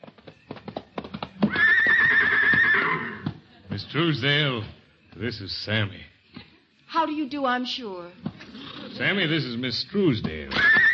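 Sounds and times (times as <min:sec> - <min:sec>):
horse hooves clip-clopping: 0:00.0 - 0:03.5, 0:10.2 - 0:10.9
horse whinnying: 0:01.4 - 0:03.4, 0:08.4 - 0:09.2, 0:10.5 - 0:10.9
speech: 0:03.9 - 0:06.1, 0:07.0 - 0:08.3, 0:09.0 - 0:10.8.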